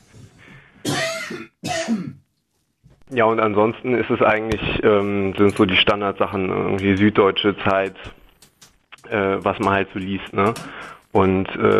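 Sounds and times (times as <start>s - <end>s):
rough coughs: 0.8s - 2.2s
speech: 3.1s - 8.2s, 9.1s - 11.7s.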